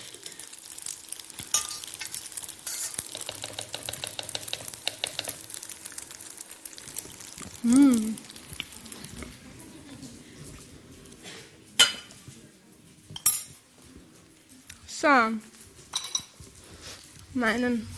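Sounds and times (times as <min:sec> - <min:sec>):
utensil scraping and clinking against a metal pot while transferring cooked food: 0:01.5 - 0:05.3
speech: 0:07.6 - 0:08.2, 0:17.4 - 0:17.9.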